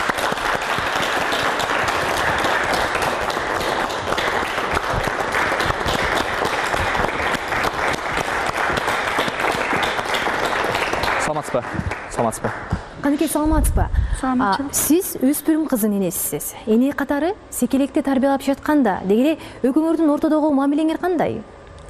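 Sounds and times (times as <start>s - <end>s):
studio audience applauding a guest onto a talk show stage: 0.0s - 12.8s
speech: 11.6s - 21.5s.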